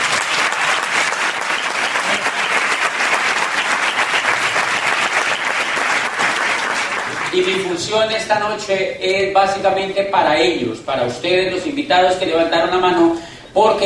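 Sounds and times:
audience applause at an evening entrepreneurship event: 0.0s - 7.7s
speech: 7.4s - 13.8s.

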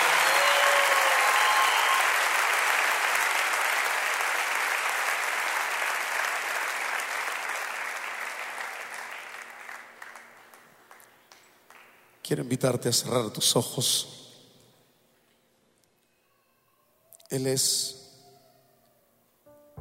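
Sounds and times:
audience applause for a performer: 0.0s - 12.0s
speech: 12.3s - 14.2s, 17.3s - 18.0s.

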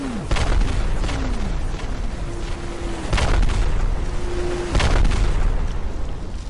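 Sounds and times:
heavy booms of rockets striking open ground between a farm and a village: 0.0s - 2.5s, 3.1s - 4.0s, 4.7s - 6.1s
continuous rumbling roar: 0.0s - 6.4s.

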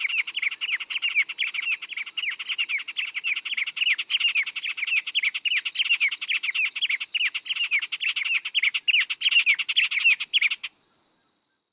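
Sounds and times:
white-rumped tanager Cypsnagra hirundinacea hirundinacea chirping: 0.0s - 10.8s.

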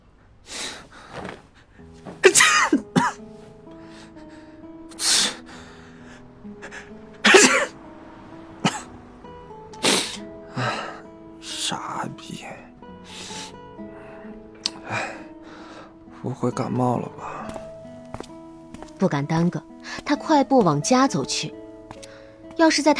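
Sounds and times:
soft sustained music tones: 1.7s - 22.9s
voice imitating sneezing in an audio drama: 2.2s - 3.2s, 4.9s - 5.4s, 6.8s - 7.7s, 8.6s - 8.9s, 9.8s - 11.0s
speech: 16.4s - 17.3s, 19.0s - 21.6s, 22.6s - 22.9s.

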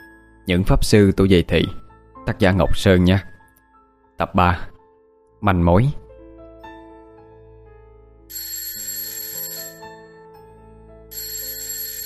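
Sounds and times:
speech: 0.5s - 3.3s, 4.2s - 4.7s, 5.4s - 6.0s
phone alarm playing a melodic chiming ringtone: 8.3s - 10.3s, 11.1s - 12.0s.

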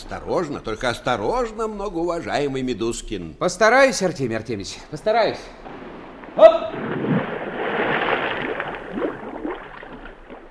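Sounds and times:
speech: 0.0s - 5.7s, 6.4s - 7.0s
water sloshing from a scuba diver going under water: 5.5s - 10.4s
air bubbles from a scuba diver going under water: 6.7s - 10.4s.

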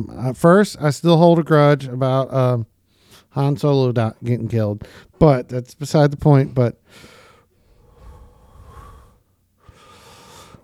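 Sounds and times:
speech: 0.0s - 2.7s, 3.3s - 7.2s
slow deep breathing exercise, inhaling and exhaling: 6.8s - 10.6s.

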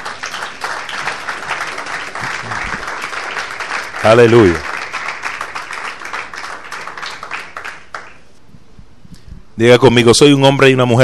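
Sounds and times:
church congregation applauding: 0.0s - 8.3s
speech: 4.0s - 4.7s, 9.6s - 11.0s.

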